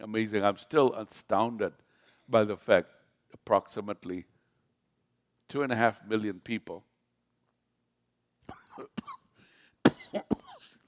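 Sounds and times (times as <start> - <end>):
speech: 0.0 - 4.3, 5.5 - 6.9, 8.5 - 9.2
person coughing after swallowing the wrong way: 8.4 - 10.8.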